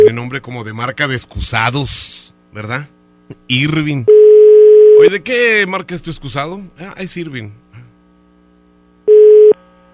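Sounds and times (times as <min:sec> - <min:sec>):
speech: 0:00.2 - 0:04.2, 0:05.0 - 0:07.6
telephone tone as a call goes to voicemail: 0:04.1 - 0:05.0, 0:09.1 - 0:09.6.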